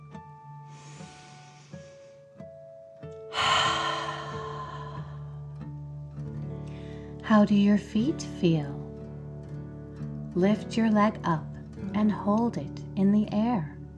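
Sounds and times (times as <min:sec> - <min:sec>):
long deep breath in and slow exhale during muscle-relaxation exercise: 0:00.7 - 0:02.2, 0:03.3 - 0:05.4
soft steady musical drone: 0:03.4 - 0:05.4
speech: 0:07.3 - 0:08.8, 0:10.4 - 0:13.7.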